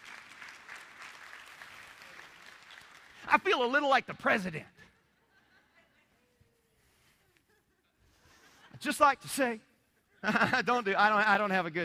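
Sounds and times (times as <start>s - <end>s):
crowd clapping: 0.0s - 3.6s
speech: 3.3s - 4.8s, 8.8s - 11.8s
laughter: 4.8s - 9.1s, 9.7s - 11.5s.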